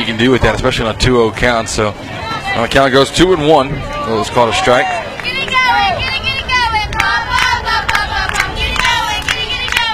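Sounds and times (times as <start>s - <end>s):
speech: 0.1s - 5.0s
softball team cheering and chanting from its dugout: 2.2s - 9.9s.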